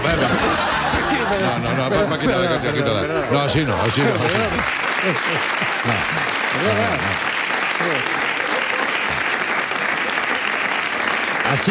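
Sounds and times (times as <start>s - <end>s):
laughter: 0.0s - 7.2s, 7.9s - 10.6s
speech: 1.8s - 8.3s
audience applause: 3.4s - 11.6s.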